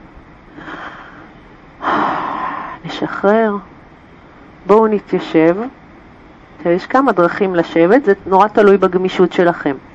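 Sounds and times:
person inhaling deeply during yoga practice: 0.5 - 2.8
speech: 2.9 - 3.7, 4.6 - 5.8, 6.6 - 9.9.

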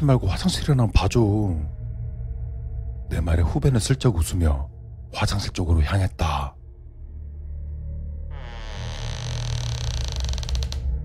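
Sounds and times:
speech: 0.0 - 1.8, 3.1 - 6.5
bathroom door creaking open: 8.3 - 10.9.

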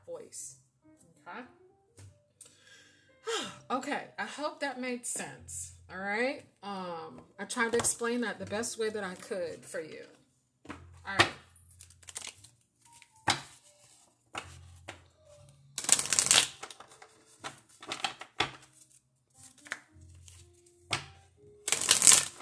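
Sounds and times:
speech: 0.3 - 0.6, 1.2 - 1.6, 3.3 - 10.2, 11.1 - 11.4
deck of angel oracle cards being shuffled: 10.7 - 15.0, 15.8 - 22.4.

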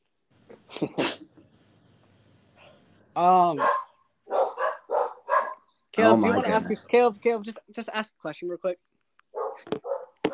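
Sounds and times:
speech: 3.2 - 3.8, 6.0 - 8.9
dogs barking: 3.6 - 5.7, 9.3 - 10.3.

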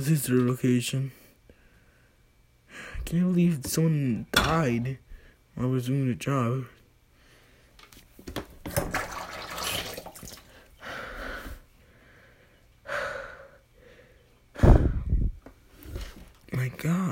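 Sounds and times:
speech: 0.0 - 1.2, 3.0 - 6.8
person breathing: 1.2 - 3.0, 5.1 - 5.5, 7.1 - 7.8, 10.5 - 16.2
water pouring into a glass: 8.9 - 10.5.

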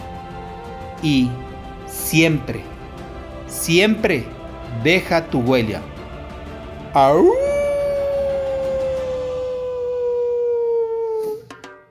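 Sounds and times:
speech: 1.0 - 2.7, 3.6 - 5.9, 6.9 - 7.4
person imitating a wolf howl: 7.0 - 11.5.

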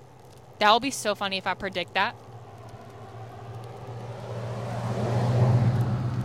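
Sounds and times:
speech: 0.6 - 2.2
truck driving past on the road: 2.3 - 6.2.

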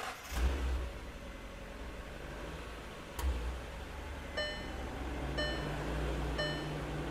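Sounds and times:
car engine starting and revving: 0.0 - 7.0
high electronic chime beeping: 4.4 - 4.8, 5.4 - 6.8.

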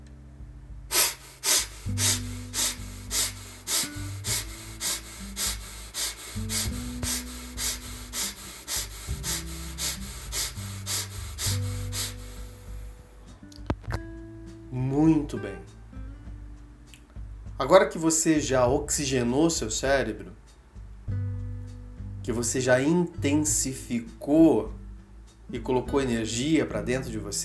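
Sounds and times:
soft music: 0.0 - 27.4
rapid forceful breathing in and out through the nose during a morning breathing exercise: 0.9 - 13.1
speech: 15.1 - 15.8, 17.6 - 20.4, 22.3 - 24.8, 25.5 - 27.4.

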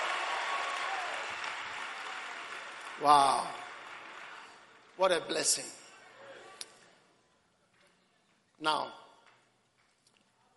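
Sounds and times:
audience applause: 0.0 - 5.1
speech: 3.0 - 3.6, 5.0 - 5.8, 8.6 - 9.0.

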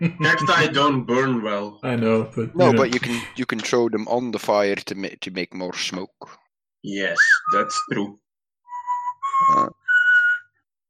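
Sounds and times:
speech: 0.0 - 8.2, 9.4 - 9.8
person whistling a Western movie tune: 7.2 - 10.6.

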